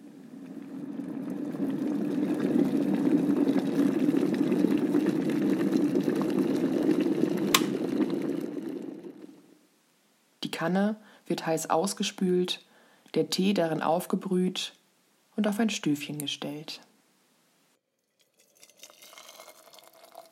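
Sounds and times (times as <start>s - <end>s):
kettle of soft water boiling for tea: 0.0s - 9.5s, 18.0s - 20.3s
speech: 10.6s - 14.8s, 15.4s - 16.9s.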